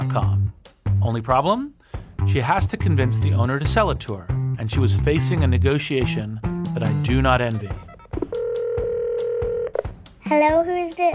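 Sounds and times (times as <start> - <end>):
speech: 0.1 - 0.4, 1.0 - 7.9, 10.3 - 11.1
steady humming telephone line tone: 8.1 - 9.8.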